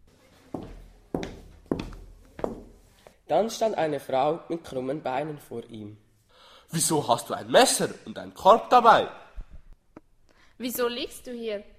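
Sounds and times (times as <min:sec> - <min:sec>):
slow footsteps with soft thuds on a hard surface: 0:00.0 - 0:03.2
speech: 0:03.3 - 0:06.0, 0:06.7 - 0:09.2, 0:10.6 - 0:11.7.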